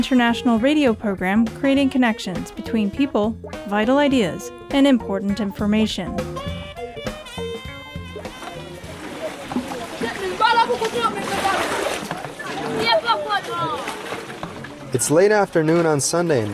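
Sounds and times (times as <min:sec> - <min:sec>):
speech: 0:00.0 - 0:06.6, 0:15.0 - 0:16.5
water gushing from running faucets into plastic buckets: 0:07.4 - 0:16.5.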